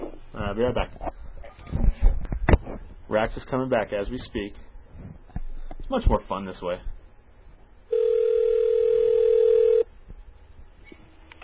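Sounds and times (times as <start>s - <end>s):
speech: 0.6s - 1.1s, 3.1s - 4.7s, 5.9s - 6.9s
telephone dialing tone on a call carried over the air: 7.9s - 9.9s.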